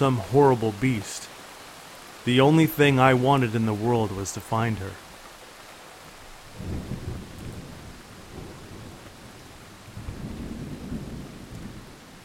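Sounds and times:
speech: 0.0s - 1.3s, 2.2s - 5.0s, 6.6s - 7.0s
steady rain: 0.0s - 12.2s
deep rolling thunder during a rainstorm: 6.4s - 12.2s.

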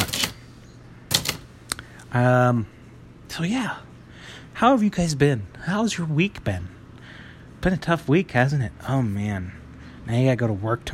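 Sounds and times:
typewriter keys clacking: 0.0s - 0.4s, 1.1s - 1.4s
speech: 2.1s - 6.8s, 7.6s - 10.9s.

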